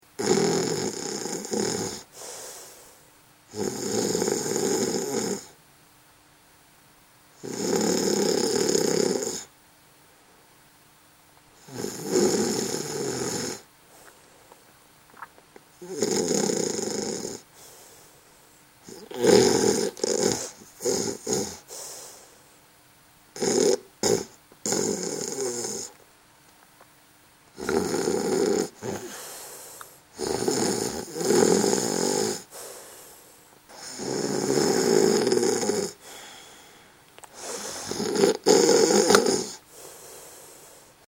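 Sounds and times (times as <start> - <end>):
woman snoring: 0.2 - 2.8, 3.5 - 5.6, 7.4 - 9.5, 11.6 - 13.7, 15.8 - 17.7, 18.8 - 22.2, 23.4 - 26.0, 27.6 - 40.9.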